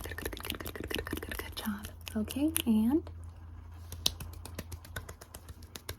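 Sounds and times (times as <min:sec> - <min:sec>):
faint low hum: 0:00.0 - 0:05.9
speech: 0:01.6 - 0:03.2
finger snapping: 0:03.9 - 0:05.9.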